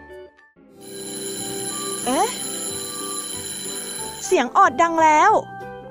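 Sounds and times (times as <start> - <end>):
loud electronic school bell chime melody: 0.8 - 5.1
speech: 4.7 - 5.5.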